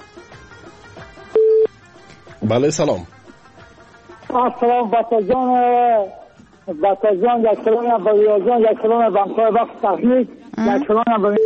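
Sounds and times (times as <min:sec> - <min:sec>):
speech: 0:02.5 - 0:03.2, 0:04.4 - 0:11.4
telephone call connecting tone beep: 0:10.7 - 0:11.4.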